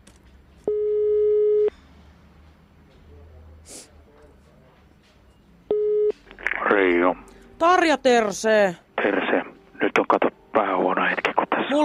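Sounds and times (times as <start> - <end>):
faint noise: 0.0 - 11.8
telephone ringback tone: 0.7 - 1.7, 5.7 - 6.2
speech: 7.1 - 10.3.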